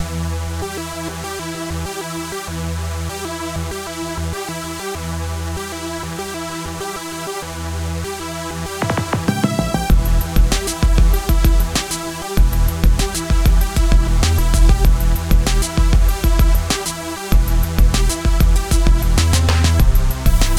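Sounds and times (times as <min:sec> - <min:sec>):
racing theme music: 0:08.1 - 0:20.5.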